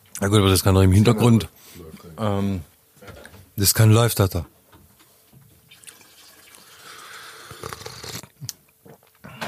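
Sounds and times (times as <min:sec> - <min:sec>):
speech: 0:00.2 - 0:02.7, 0:03.6 - 0:04.6
water boiling: 0:05.6 - 0:08.3.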